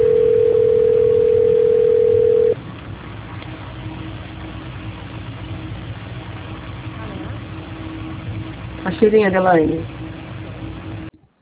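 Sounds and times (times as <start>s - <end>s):
telephone line tone while a phone call is transferred: 0.0s - 2.6s
speech: 9.0s - 10.0s.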